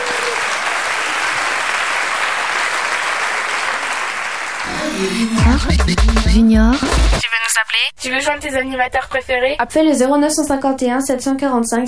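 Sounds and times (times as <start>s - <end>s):
children applauding: 0.0s - 5.2s
speech: 5.0s - 11.8s.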